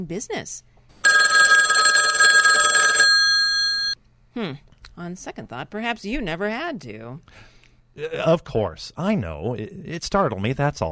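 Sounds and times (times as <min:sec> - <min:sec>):
speech: 0:00.0 - 0:00.7, 0:04.4 - 0:10.9
loud telephone bell ringing in a metallic trill: 0:01.0 - 0:04.0.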